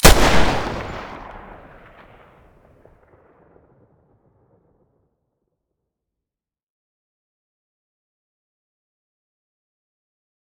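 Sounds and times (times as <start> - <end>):
Desert Eagle pistol gunshot: 0.0 - 2.3.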